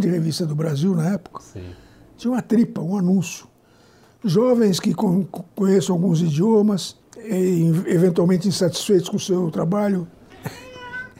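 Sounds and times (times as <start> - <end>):
speech: 0.0 - 3.5, 4.2 - 10.6
cat meowing: 10.3 - 11.1.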